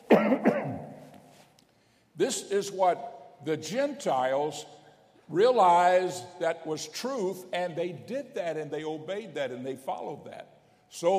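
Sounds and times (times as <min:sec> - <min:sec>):
man coughing: 0:00.0 - 0:00.9
speech: 0:02.2 - 0:11.1.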